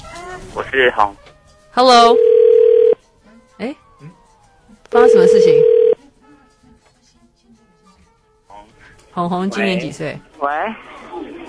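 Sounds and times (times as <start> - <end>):
speech: 0.4 - 1.2, 1.8 - 2.3, 3.6 - 4.2, 4.9 - 5.8, 8.6 - 11.4
loud steady electronic telephone dialing tone: 1.9 - 3.0, 5.0 - 6.0.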